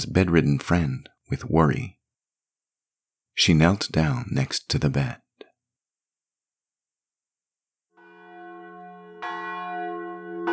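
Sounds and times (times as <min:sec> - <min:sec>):
speech: 0:00.0 - 0:02.0, 0:03.4 - 0:05.2
church bell ringing for vespers: 0:08.0 - 0:10.5.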